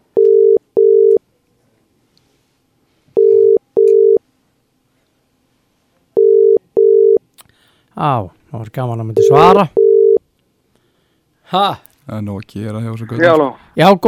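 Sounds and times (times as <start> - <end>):
telephone ringing tone while a call is being placed: 0.2 - 1.2, 3.2 - 4.2, 6.2 - 7.2, 9.2 - 10.2
speech: 8.0 - 9.9, 11.5 - 14.0.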